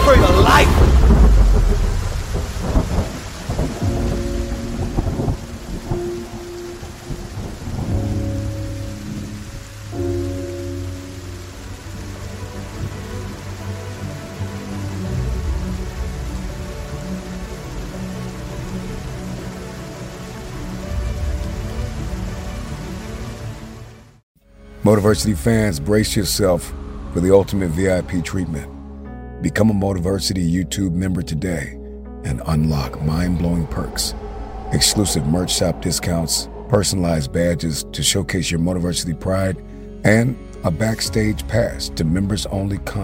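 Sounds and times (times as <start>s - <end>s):
deep thunder rumbling: 0.0s - 23.3s, 32.4s - 38.4s
steady rain: 0.0s - 24.2s, 32.4s - 43.0s
speech: 24.9s - 28.7s, 29.4s - 43.0s.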